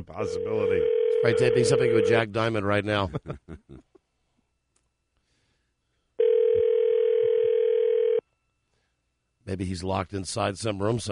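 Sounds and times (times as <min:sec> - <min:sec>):
speech: 0:00.0 - 0:03.6, 0:09.5 - 0:11.1
telephone ringback tone on an outgoing call: 0:00.2 - 0:02.2, 0:06.2 - 0:08.2.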